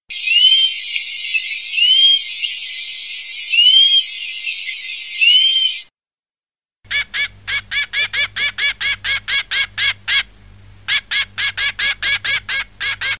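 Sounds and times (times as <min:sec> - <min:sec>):
diamond firetail bird calls: 0:00.1 - 0:05.9, 0:06.9 - 0:10.3, 0:10.9 - 0:13.1.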